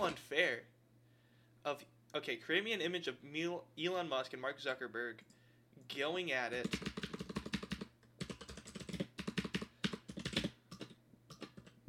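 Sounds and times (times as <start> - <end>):
speech: 0.0 - 0.7, 1.6 - 7.1
typing on a computer keyboard: 6.6 - 11.8.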